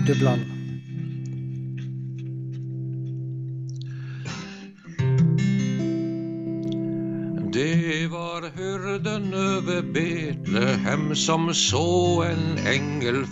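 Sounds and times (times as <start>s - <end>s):
speech: 0.0s - 0.6s, 7.6s - 13.2s
acoustic guitar strumming chords for a Christmas song: 0.0s - 13.2s.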